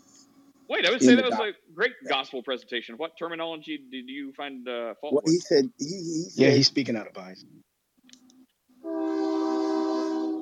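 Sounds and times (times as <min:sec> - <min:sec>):
speech: 0:00.7 - 0:07.7
train horn blaring as a train passes: 0:08.8 - 0:10.4.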